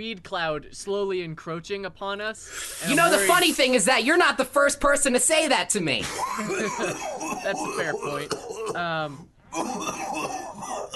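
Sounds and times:
speech: 0:00.0 - 0:10.9
harsh throaty coughing: 0:06.0 - 0:10.9.

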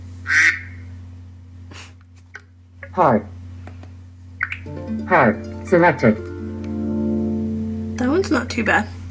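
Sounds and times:
faint steady low hum: 0:00.0 - 0:09.0
duck quacking: 0:00.3 - 0:00.9
speech: 0:03.0 - 0:03.4, 0:05.1 - 0:06.3, 0:08.3 - 0:09.0.

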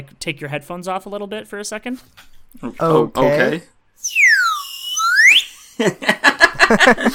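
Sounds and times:
speech: 0:00.0 - 0:04.2, 0:05.8 - 0:07.1
slide whistle: 0:04.0 - 0:05.8
laughter: 0:05.7 - 0:07.1.

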